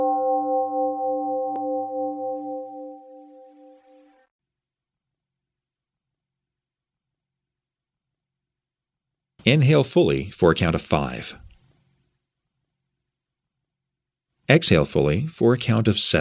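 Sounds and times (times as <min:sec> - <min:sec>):
meditation gong struck and ringing: 0:00.1 - 0:04.1
speech: 0:09.5 - 0:11.5, 0:14.5 - 0:16.2.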